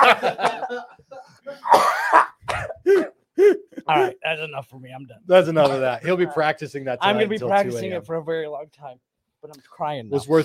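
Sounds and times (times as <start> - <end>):
laughter: 0.0 - 3.0
speech: 0.1 - 1.9, 3.9 - 10.4
person coughing after a French inhale of cigar smoke: 1.5 - 4.2.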